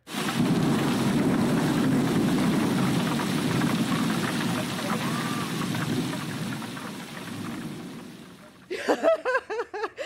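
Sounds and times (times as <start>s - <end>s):
blustery wind in a storm: 0.0s - 8.7s
low rumbling undertone: 0.0s - 8.7s
heavy rain in a storm: 0.0s - 9.1s
laughter: 8.7s - 10.0s.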